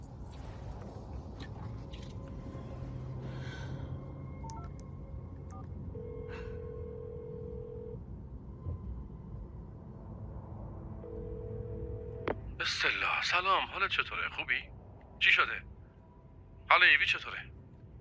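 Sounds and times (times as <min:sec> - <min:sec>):
constant low hum: 0:00.0 - 0:17.9
long steady telephone tones: 0:04.2 - 0:12.4
speech: 0:13.2 - 0:15.7, 0:16.7 - 0:17.5.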